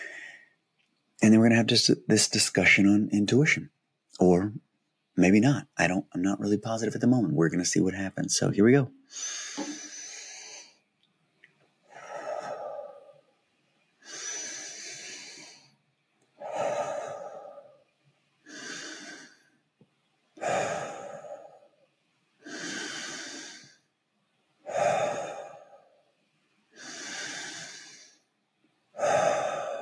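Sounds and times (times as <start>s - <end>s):
person breathing in and out slowly: 0.0s - 0.6s, 9.1s - 10.8s, 11.9s - 13.3s, 14.0s - 15.8s, 16.4s - 19.6s, 20.4s - 21.8s, 22.4s - 23.9s, 24.6s - 26.1s, 26.8s - 28.3s, 29.0s - 29.7s
speech: 1.2s - 4.6s, 5.2s - 9.7s.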